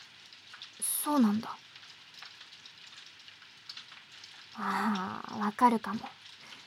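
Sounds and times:
rain falling: 0.0s - 6.6s
speech: 1.0s - 1.6s, 4.6s - 6.2s.

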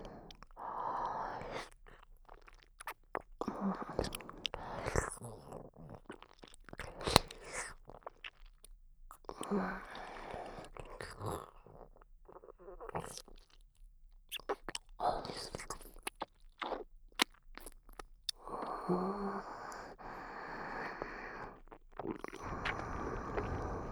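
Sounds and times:
person chewing sticky food while eating: 1.6s - 23.9s.

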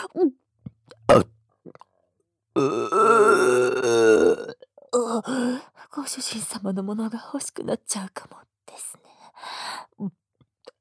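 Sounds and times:
speech: 0.0s - 0.4s, 1.1s - 1.4s, 2.6s - 4.4s, 5.1s - 10.2s
person burping: 0.9s - 1.3s, 2.6s - 4.6s
long, drawn-out rumbling belch: 1.1s - 1.3s, 2.6s - 4.5s.

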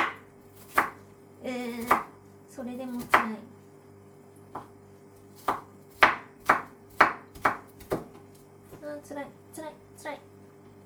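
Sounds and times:
knife chopping an onion into cubes: 0.0s - 2.2s, 2.8s - 3.4s, 4.5s - 8.9s
speech: 2.6s - 3.6s.

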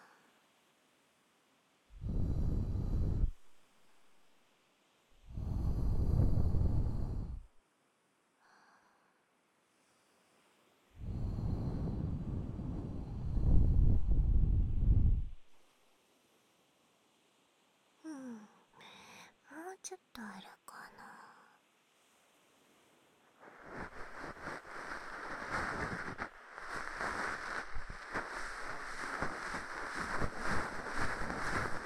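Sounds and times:
breath blown softly into the ear: 2.0s - 3.6s, 5.3s - 7.5s, 11.0s - 15.4s, 23.4s - 31.8s
speech: 19.8s - 21.0s.

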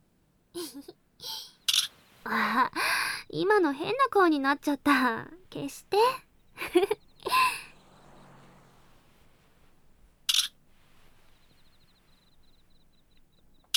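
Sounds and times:
speech: 0.6s - 1.4s, 2.2s - 7.0s
camera shutter clicks as photos are taken: 1.7s - 1.9s, 10.3s - 10.5s
laughter: 6.6s - 8.7s.

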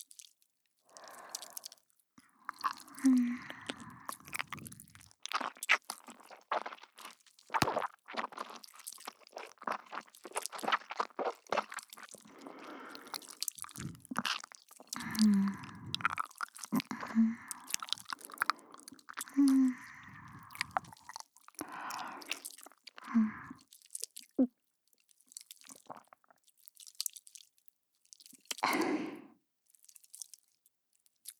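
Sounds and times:
wet mouth chewing with clicks and squelches: 0.9s - 1.8s, 2.4s - 24.4s, 25.2s - 27.4s, 28.2s - 28.9s
gulping swallows: 1.0s - 1.8s, 2.4s - 23.6s, 25.6s - 26.3s.

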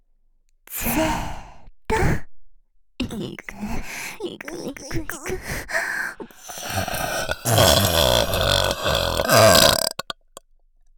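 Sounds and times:
speech: 1.0s - 1.3s, 3.2s - 5.8s
long loud burp: 6.5s - 10.1s.

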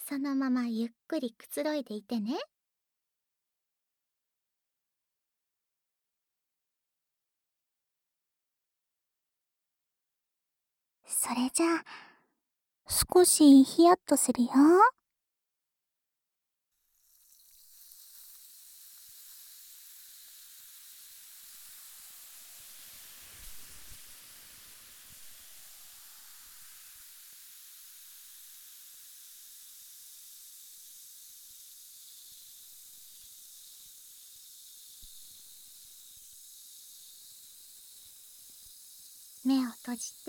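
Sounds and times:
speech: 0.1s - 2.5s, 11.2s - 12.1s, 12.9s - 15.0s, 39.5s - 40.2s
carbonated water fizzing while washing an ear: 16.8s - 40.2s.

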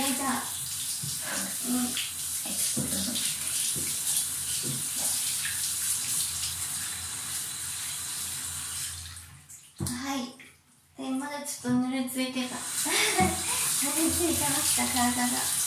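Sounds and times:
running water rinsing soap foam off a body: 0.0s - 9.2s, 12.4s - 15.6s
speech: 11.5s - 13.4s, 14.0s - 15.6s.

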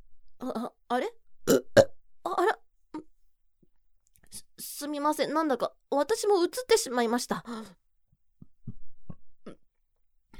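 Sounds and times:
speech: 0.4s - 1.2s, 5.0s - 7.8s
short, low, throaty burps: 1.5s - 1.9s, 9.4s - 9.7s.

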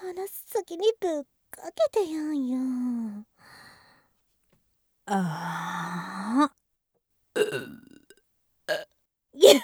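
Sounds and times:
speech: 0.1s - 3.3s, 5.1s - 6.6s, 7.4s - 7.9s, 9.4s - 9.6s
loud deep gurgling burps: 7.4s - 8.9s.

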